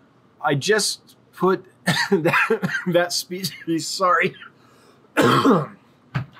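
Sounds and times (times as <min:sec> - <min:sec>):
speech: 0:00.4 - 0:04.5, 0:05.2 - 0:05.8
harsh cough from someone with a cold: 0:01.9 - 0:03.7, 0:05.2 - 0:05.8
throat-clearing rasp: 0:05.2 - 0:05.8.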